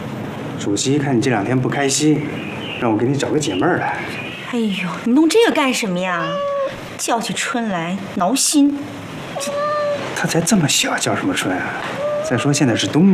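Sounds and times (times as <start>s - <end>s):
people talking: 0.6s - 8.9s, 9.4s - 13.1s
cat meowing: 6.0s - 7.0s, 9.3s - 10.5s, 11.4s - 13.1s.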